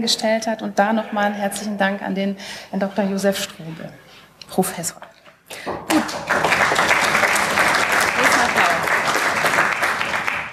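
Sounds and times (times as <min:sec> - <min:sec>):
speech: 0:00.0 - 0:05.8
audience applause: 0:05.9 - 0:10.5.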